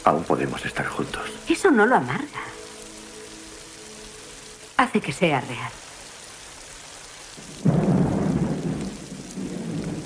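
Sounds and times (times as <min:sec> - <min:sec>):
speech: 0:00.0 - 0:02.6, 0:04.8 - 0:05.8
steady rain: 0:00.0 - 0:10.0
deep rumble of thunder: 0:07.4 - 0:10.0.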